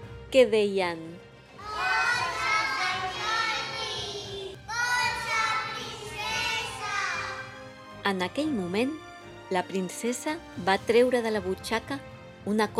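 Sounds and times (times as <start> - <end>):
speech: 0.3 - 1.2, 8.0 - 12.7
boys and girls cheering and shouting encouragement: 1.6 - 7.5.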